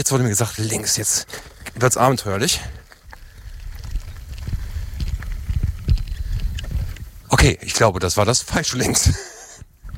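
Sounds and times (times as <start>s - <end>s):
speech: 0.0s - 2.8s, 7.4s - 9.3s
horse hooves trotting over soft ground in a paddock: 0.6s - 7.5s.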